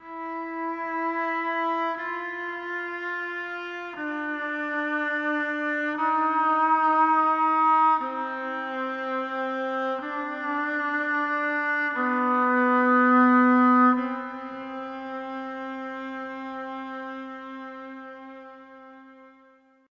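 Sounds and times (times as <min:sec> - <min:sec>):
slow violin: 0:00.0 - 0:19.9.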